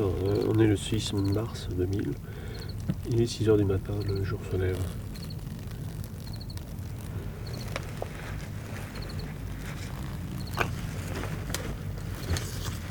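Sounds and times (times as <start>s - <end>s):
speech: 0.0s - 5.1s
many insects' wings buzzing in a tamarisk: 0.0s - 12.9s
thin high chirps: 2.5s - 2.8s, 3.9s - 7.8s, 8.9s - 9.4s, 10.0s - 10.6s.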